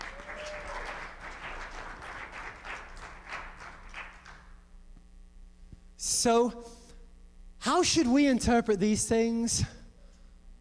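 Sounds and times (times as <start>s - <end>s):
audience applause during a talk: 0.0s - 4.5s
speech: 6.0s - 6.8s, 7.8s - 9.8s.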